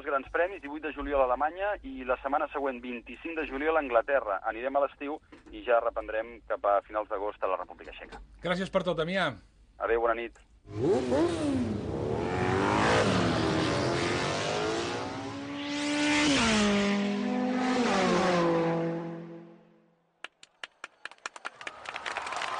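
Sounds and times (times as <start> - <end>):
speech: 0.1 - 11.9
racing motorcycle engines revving hard at a world championship: 10.7 - 19.6.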